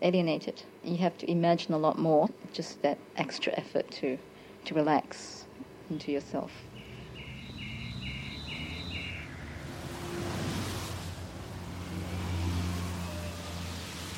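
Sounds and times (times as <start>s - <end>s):
speech: 0.0s - 6.7s
bird chirping in quick repeated notes: 5.9s - 9.7s
cars swooshing past along a street: 6.6s - 14.1s.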